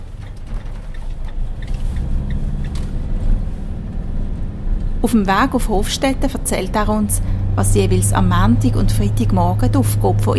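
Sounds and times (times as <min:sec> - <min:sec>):
mechanical clanks and rattles of truck and trailer being hitched: 0:00.0 - 0:05.0
heavy truck engine rumbling in a zoo operations courtyard: 0:00.0 - 0:10.3
speech: 0:05.0 - 0:10.3.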